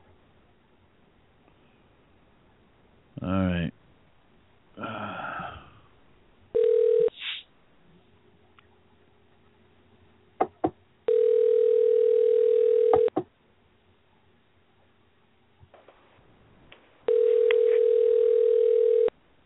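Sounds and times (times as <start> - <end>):
ringback tone of a telephone on an outgoing call: 6.6 - 7.2, 11.1 - 13.1, 17.1 - 19.1.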